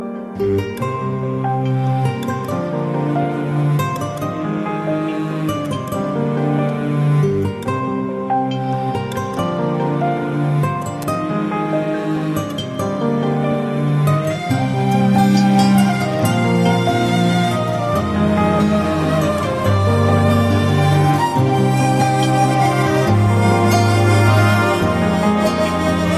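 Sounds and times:
jazz piano: 0.0s - 26.1s
jazz flute: 14.0s - 26.1s.

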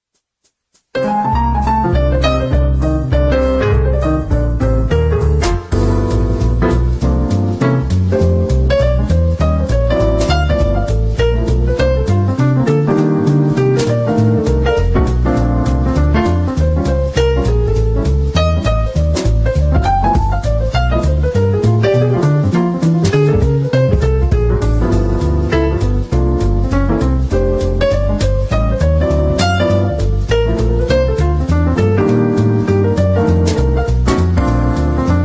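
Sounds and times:
jazz piano swing: 0.8s - 35.2s.

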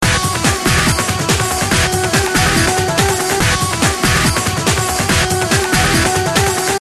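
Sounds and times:
techno loop: 0.0s - 6.7s.

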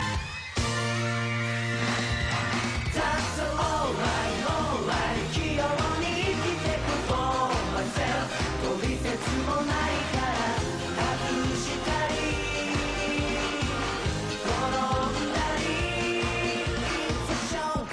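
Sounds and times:
guitar: 0.0s - 17.8s.

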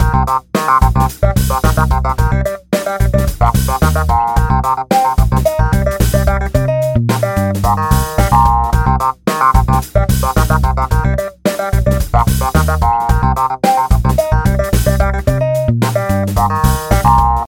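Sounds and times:
1970s funky tone: 0.0s - 17.4s.

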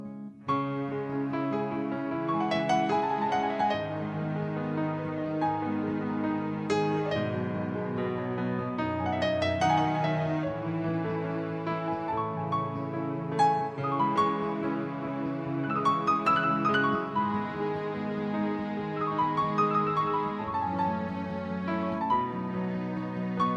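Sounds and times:
classical piano piece: 0.0s - 23.5s.

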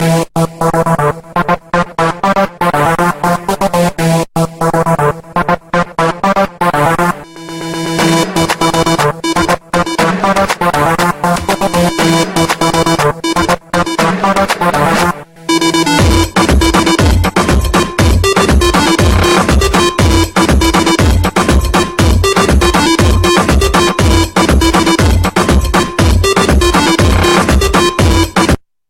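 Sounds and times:
noisy bass disco music: 0.0s - 28.6s.

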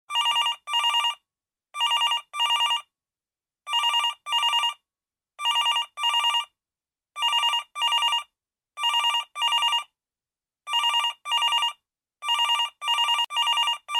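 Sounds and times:
modern phone ringtone: 0.1s - 1.2s, 1.8s - 2.8s, 3.7s - 4.7s, 5.4s - 6.5s, 7.2s - 8.2s, 8.8s - 9.8s, 10.7s - 13.9s.

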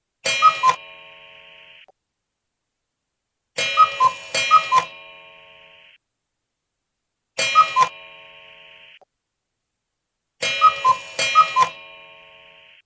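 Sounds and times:
old cuckoo clock: 0.2s - 1.8s, 3.6s - 6.0s, 7.4s - 9.0s, 10.4s - 12.8s.

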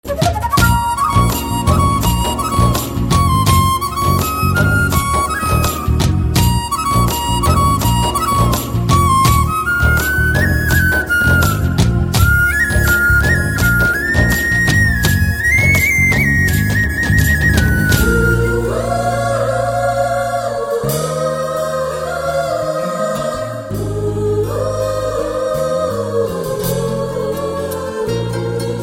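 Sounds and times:
drum: 0.0s - 19.2s
flute: 0.0s - 28.8s.

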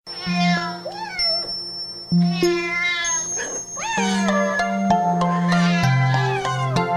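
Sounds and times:
domestic cat meowing: 0.1s - 1.6s, 2.2s - 6.8s.

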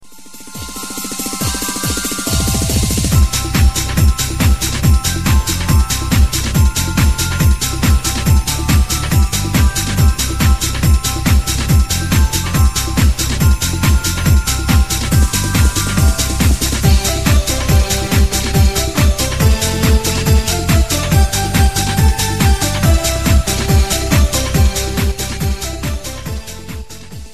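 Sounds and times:
jingle bell beat ringtone: 0.1s - 27.3s.

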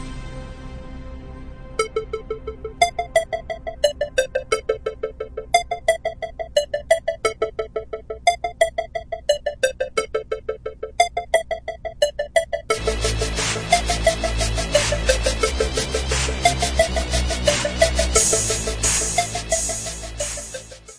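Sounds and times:
hard hip hop rap instrumental beat: 1.8s - 20.9s.

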